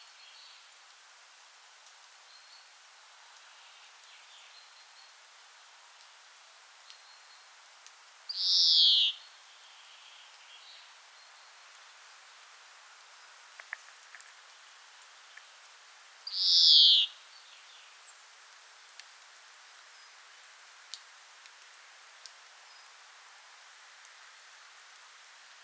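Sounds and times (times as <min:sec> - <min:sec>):
European greenfinch Chloris chloris call: 0:08.4 - 0:09.2, 0:16.3 - 0:17.1
faint high ticks: 0:13.5 - 0:14.4
faint clicks: 0:13.5 - 0:15.8, 0:18.9 - 0:19.3, 0:20.9 - 0:22.5.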